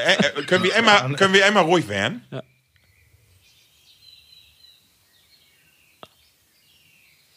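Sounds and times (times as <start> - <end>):
laughter: 0.0 - 2.5
speech: 0.0 - 2.5
faint bird chirps and short calls: 2.2 - 7.3.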